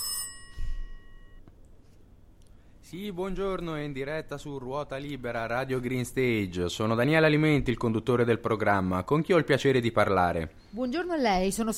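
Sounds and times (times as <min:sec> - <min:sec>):
telephone ringing for incoming call during live radio phone-in: 0:00.0 - 0:01.4
speech: 0:02.9 - 0:11.7.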